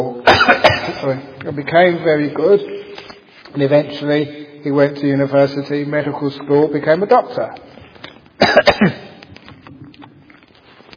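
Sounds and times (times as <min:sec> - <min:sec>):
person coughing harshly: 0:00.2 - 0:01.2, 0:08.4 - 0:09.2
speech: 0:01.0 - 0:02.8, 0:03.5 - 0:07.8, 0:08.4 - 0:09.0.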